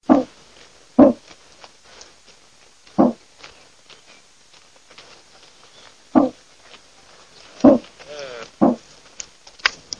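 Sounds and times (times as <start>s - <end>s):
deer call: 0.1s - 0.3s, 1.0s - 1.2s, 6.1s - 6.4s, 7.6s - 8.9s.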